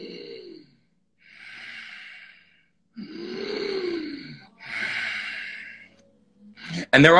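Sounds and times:
deep forceful breathing in and out: 0.0s - 6.9s.

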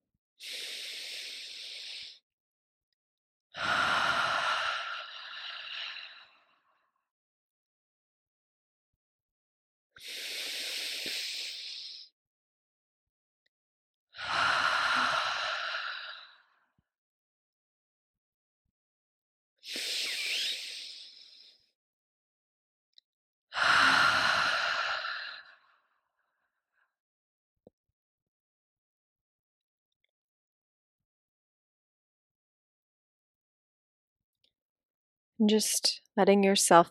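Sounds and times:
slow deep breaths in through the nose and out through the mouth: 0.4s - 2.2s, 3.6s - 6.7s, 10.0s - 12.2s, 14.2s - 16.8s, 19.6s - 21.8s, 23.5s - 25.9s
speech: 35.4s - 36.9s.

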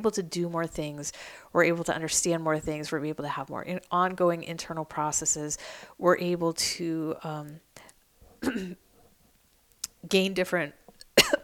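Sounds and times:
speech: 0.0s - 7.8s, 8.4s - 8.8s, 10.0s - 10.8s
person coughing: 8.4s - 8.8s, 11.2s - 11.4s.

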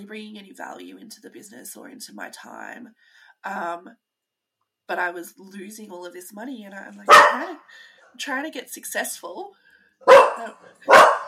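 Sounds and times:
speech: 0.0s - 4.1s, 4.9s - 11.2s
small dog barking outside: 7.1s - 7.6s, 10.0s - 11.2s.

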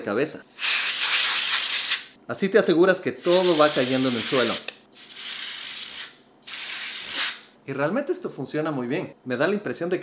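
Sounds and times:
speech: 0.0s - 0.7s, 2.3s - 4.7s, 7.7s - 10.0s
can of compressed air sprayed into a keyboard to remove dust: 0.5s - 2.2s, 3.2s - 7.5s.

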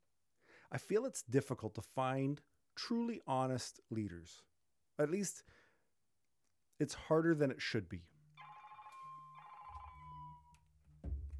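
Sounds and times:
speech: 0.7s - 5.6s, 6.8s - 8.1s
phone ringtone from an incoming call: 8.4s - 10.6s.

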